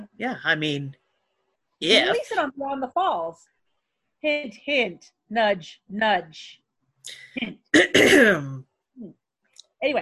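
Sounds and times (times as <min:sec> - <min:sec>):
speech: 0:00.2 - 0:01.0, 0:01.8 - 0:03.6, 0:04.2 - 0:09.2, 0:09.8 - 0:10.0
loud cough into a microphone: 0:07.8 - 0:08.6.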